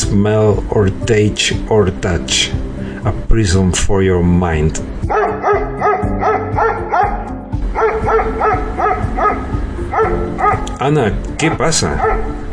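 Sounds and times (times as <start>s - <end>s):
speech: 0.1s - 5.0s, 10.0s - 12.4s
several small dogs barking and yipping in a booth: 5.1s - 10.7s, 11.5s - 12.5s.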